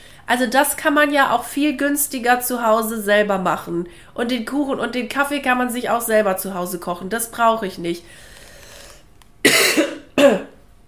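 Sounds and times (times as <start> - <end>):
speech: 0.3 - 8.3
person coughing harshly: 9.4 - 10.6.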